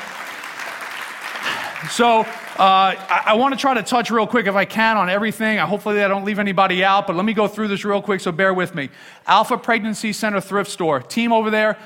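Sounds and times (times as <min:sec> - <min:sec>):
church audience applause for community service work: 0:00.0 - 0:03.6
speech: 0:01.8 - 0:11.8.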